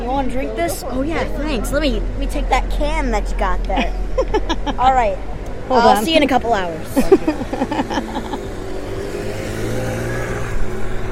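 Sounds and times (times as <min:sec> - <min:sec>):
speech: 0:00.2 - 0:08.5
laughter: 0:03.7 - 0:04.9, 0:06.9 - 0:08.7
motorbike engine revving as it passes: 0:07.0 - 0:11.0.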